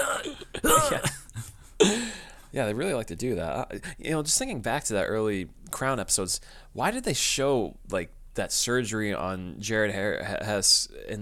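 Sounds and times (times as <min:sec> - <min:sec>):
man imitating a hacking cough: 0:00.0 - 0:02.3
speech: 0:00.7 - 0:01.2, 0:01.8 - 0:11.2.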